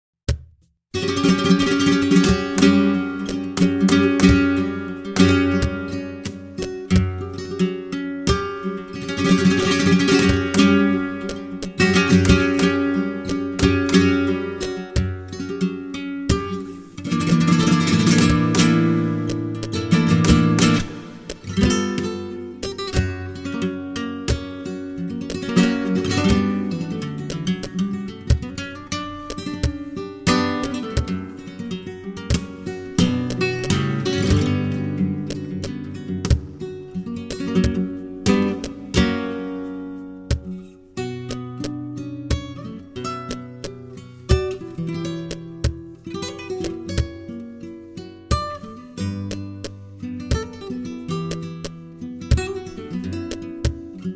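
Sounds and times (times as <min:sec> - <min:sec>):
flamenco guitar playing a solea: 0:00.9 - 0:54.1.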